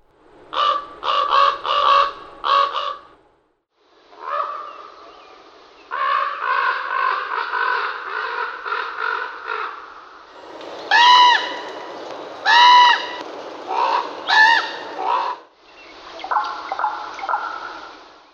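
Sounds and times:
common raven croaks, clicks and whistle-like notes: 0:00.3 - 0:03.2, 0:04.1 - 0:05.2, 0:05.9 - 0:15.5.

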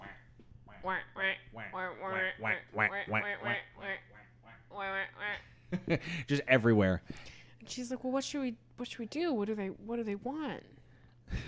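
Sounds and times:
person imitating ducks quacking: 0:00.0 - 0:05.5
speech: 0:00.8 - 0:03.7, 0:05.9 - 0:10.7.

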